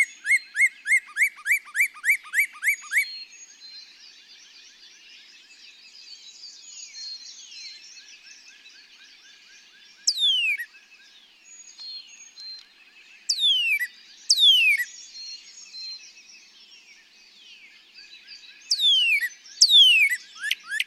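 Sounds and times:
Northern Cardinal giving loud down-slurred whistles: 0.0s - 3.1s, 10.1s - 10.7s, 13.3s - 14.9s, 18.7s - 20.8s
chorus of fainter birds: 0.0s - 20.8s.

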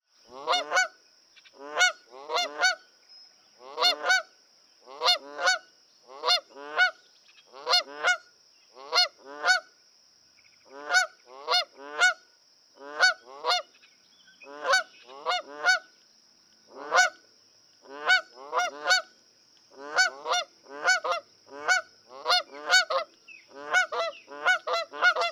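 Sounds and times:
Canada goose: 0.3s - 2.8s, 3.6s - 8.2s, 8.8s - 9.7s, 10.7s - 12.2s, 12.8s - 15.9s, 16.7s - 17.2s, 17.8s - 19.1s, 19.7s - 25.2s.

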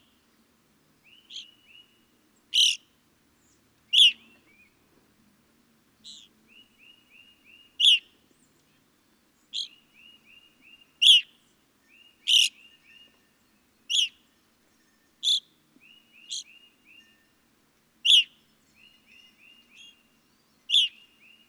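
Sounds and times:
evening grosbeak chirping: 1.0s - 1.9s, 2.5s - 2.8s, 3.9s - 4.8s, 6.0s - 8.1s, 9.5s - 11.3s, 11.9s - 13.2s, 13.9s - 14.2s, 14.8s - 17.2s, 18.0s - 21.4s.

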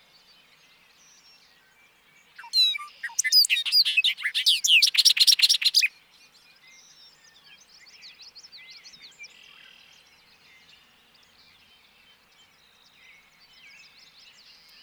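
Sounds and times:
bird twittering: 2.4s - 5.9s.

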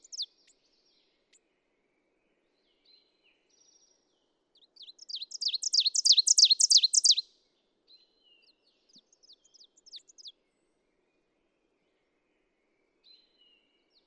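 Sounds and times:
ovenbird singing loud quick rhythmic repeated phrases: 0.0s - 0.6s, 4.6s - 7.2s, 8.9s - 10.3s.

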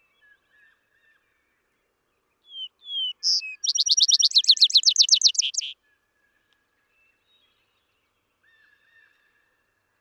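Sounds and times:
vesper sparrow singing: 2.5s - 5.7s.

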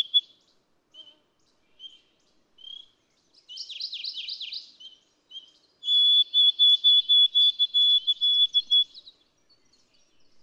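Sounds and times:
White-throated sparrow song: 0.0s - 0.3s, 3.5s - 10.1s.

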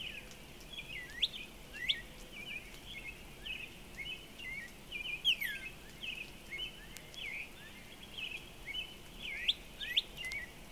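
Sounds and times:
steady background noise: 0.0s - 10.7s
Northern Cardinal song of slurred whistles: 2.9s - 10.5s.

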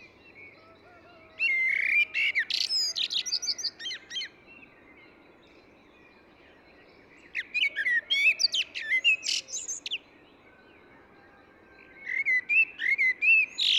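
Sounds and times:
Eurasian blackbird singing a rich whistled warble with high squeaky notes: 0.0s - 13.7s.

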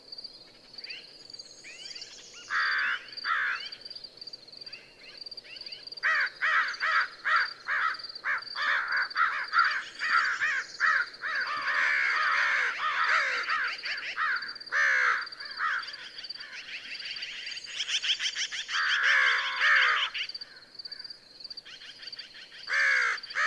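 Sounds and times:
American crow calling with rough caws: 2.5s - 3.8s, 6.0s - 17.0s, 17.8s - 21.0s, 22.7s - 23.4s.

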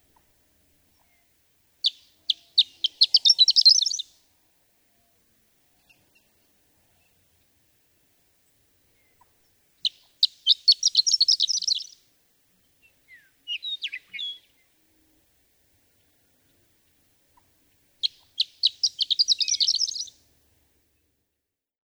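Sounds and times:
Horned lark singing tinkling song phrases and twittering: 1.0s - 4.1s, 9.8s - 12.0s, 12.9s - 14.8s, 18.0s - 20.2s.

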